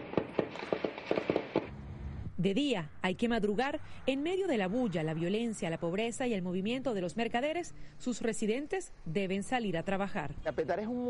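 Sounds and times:
gunshots at night: 0.0s - 1.7s
speech: 2.4s - 11.0s.

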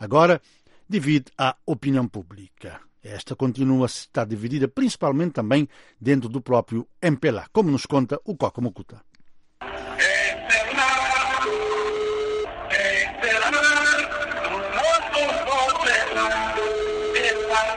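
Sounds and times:
speech: 0.0s - 9.1s
song with singing voices playing as mobile phone ringback: 9.6s - 17.7s.

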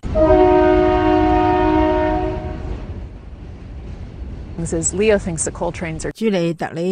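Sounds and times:
coal freight train horn blast: 0.0s - 2.9s
coal freight train rumbling past: 0.0s - 6.2s
speech: 0.1s - 0.4s, 4.6s - 6.8s.

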